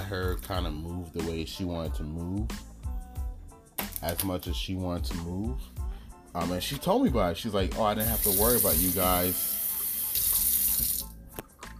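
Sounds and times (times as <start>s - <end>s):
speech: 0.1s - 2.7s, 4.0s - 9.6s
water running from a faucet: 8.0s - 11.1s.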